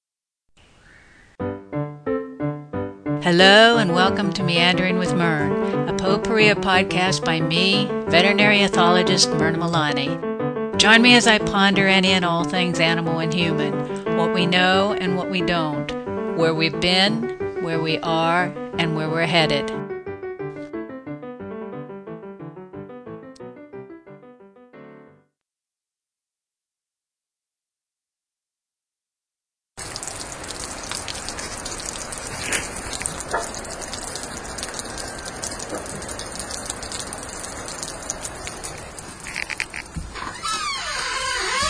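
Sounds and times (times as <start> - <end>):
short musical passage: 1.4 - 25.4
speech: 3.2 - 15.8, 16.4 - 19.9
rain pattering: 3.7 - 10.0, 29.8 - 41.6
brook-sized river rushing: 30.5 - 39.8
ice clattering as it slides off a roof: 32.2 - 33.7.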